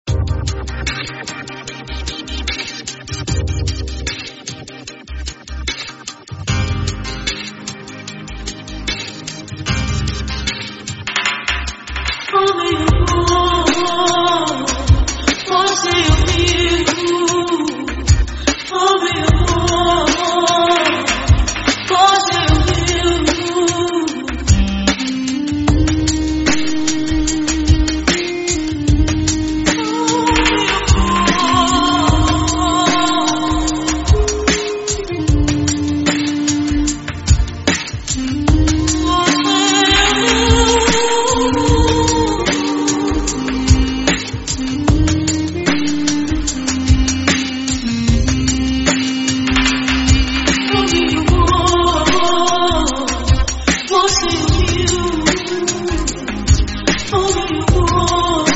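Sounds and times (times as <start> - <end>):
theme music with female voice: 0.0 - 58.5.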